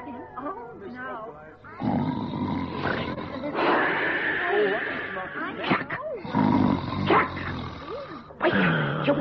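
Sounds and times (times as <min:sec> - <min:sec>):
person doing exaggerated loud snoring: 0:01.8 - 0:05.6, 0:06.2 - 0:09.1.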